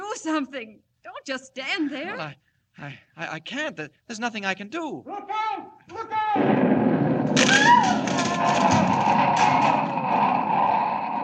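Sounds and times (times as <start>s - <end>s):
speech: 0.2s - 6.7s
explosion of dynamite or nitroglycerin inside a room with a safe: 6.4s - 11.2s.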